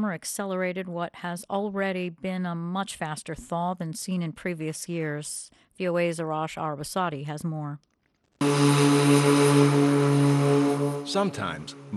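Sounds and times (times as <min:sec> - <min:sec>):
speech: 0:00.0 - 0:11.9
rebuilt 1942 DC-3 propeller plane droning in flight: 0:08.4 - 0:11.9.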